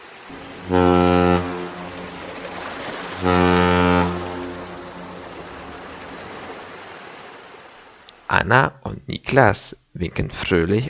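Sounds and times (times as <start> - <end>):
speech: 0.3 - 1.2, 3.2 - 3.6, 8.4 - 10.8
ship's horn deep blasts: 0.3 - 7.6
steady low rumble: 0.3 - 8.2.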